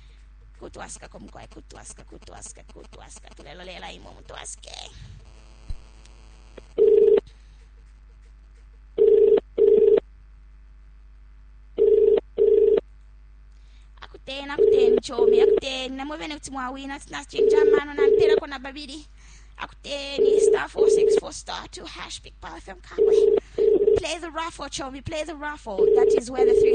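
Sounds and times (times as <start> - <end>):
speech: 0.6 - 5.3, 15.0 - 23.4, 24.0 - 26.7
telephone ringing tone in double pulses: 6.8 - 7.2, 9.0 - 10.0, 11.8 - 12.8, 17.4 - 18.4, 23.0 - 24.1, 25.8 - 26.7.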